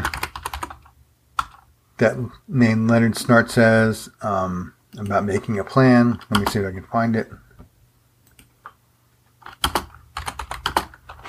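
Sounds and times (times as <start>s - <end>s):
computer keyboard typing: 0.0s - 1.6s, 6.2s - 6.6s, 9.4s - 11.2s
speech: 2.0s - 7.4s.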